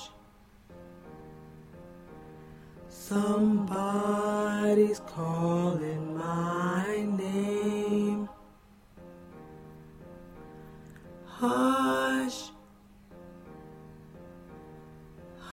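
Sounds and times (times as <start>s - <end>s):
baritone singing: 2.9s - 8.5s, 11.3s - 12.7s.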